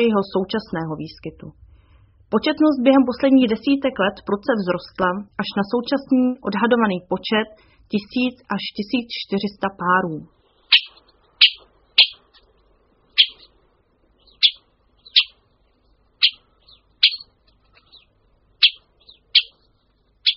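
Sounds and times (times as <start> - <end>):
speech: 0.0 - 1.6, 2.3 - 10.8
Syrian woodpecker calls: 10.6 - 20.3.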